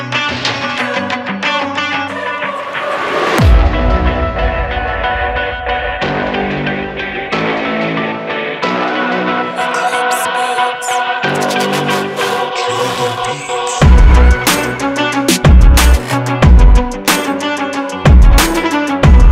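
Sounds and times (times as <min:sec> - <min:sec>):
motivational choir: 0:00.3 - 0:15.3
hard uplifting rap beat: 0:08.7 - 0:19.3.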